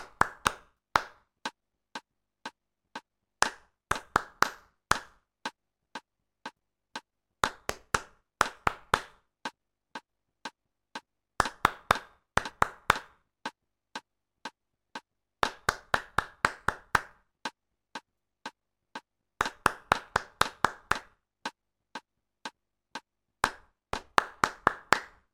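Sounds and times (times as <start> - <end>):
warm clapping: 0.0 - 1.6, 3.4 - 5.6, 7.4 - 9.6, 11.4 - 13.6, 15.4 - 17.6, 19.4 - 21.6, 23.4 - 25.3.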